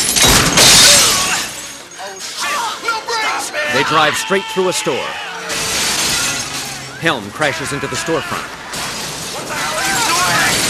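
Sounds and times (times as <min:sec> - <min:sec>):
taxi windshield glass shattering from gunfire of a heavy shotgun-sized cannon: 0:00.0 - 0:03.0, 0:05.4 - 0:07.0, 0:08.7 - 0:10.6
speech: 0:03.8 - 0:05.6, 0:07.0 - 0:08.6.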